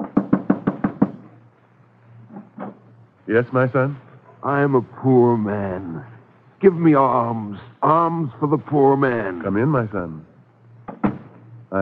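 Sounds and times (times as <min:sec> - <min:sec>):
knocking on the wooden door of a rabbi's house: 0:00.0 - 0:01.2, 0:10.9 - 0:11.4
low hum: 0:01.2 - 0:11.7
speech: 0:03.3 - 0:10.3.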